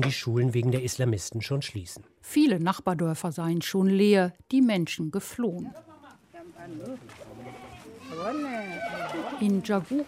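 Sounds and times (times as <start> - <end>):
speech: 0.0 - 5.9, 6.6 - 7.2, 9.4 - 10.0
busy outdoor village background: 0.0 - 10.0
goats bleating among small mud houses in a village: 7.3 - 9.6.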